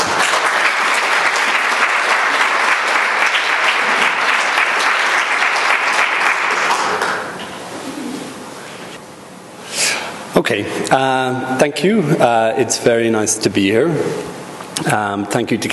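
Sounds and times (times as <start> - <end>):
audience applause: 0.0 - 7.4
speech: 10.5 - 15.7.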